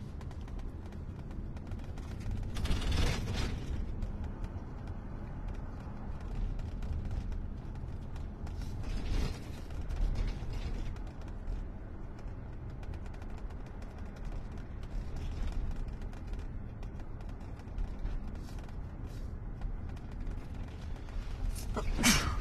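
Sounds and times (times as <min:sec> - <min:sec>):
car engine rumble inside a moving vehicle: 0:00.0 - 0:22.3
police sergeant sneezing in a moving vehicle: 0:21.8 - 0:22.3.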